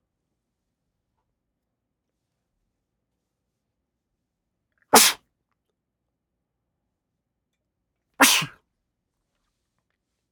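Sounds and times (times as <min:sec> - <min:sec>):
person sneezing: 0:05.0 - 0:05.2, 0:08.2 - 0:08.5.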